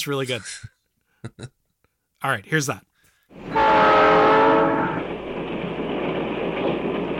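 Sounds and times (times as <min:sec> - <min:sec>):
speech: 0:00.0 - 0:01.6, 0:02.2 - 0:04.3
train horn blaring: 0:03.4 - 0:05.1
train rolling along the rails: 0:03.4 - 0:07.1.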